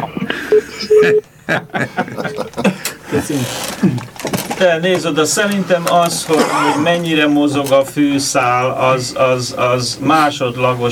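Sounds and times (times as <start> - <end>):
people chuckling: 0.0 - 4.1, 6.2 - 7.1
mobile phone ringing with short electronic tones: 0.5 - 1.3
speech: 1.0 - 10.9.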